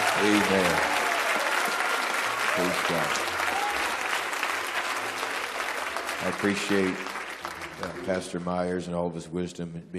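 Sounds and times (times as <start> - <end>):
church service audience clapping hands to honor the pastor and bishop: 0.0 - 8.8
speech: 0.2 - 0.9, 2.6 - 3.4, 6.2 - 7.2, 7.8 - 9.9.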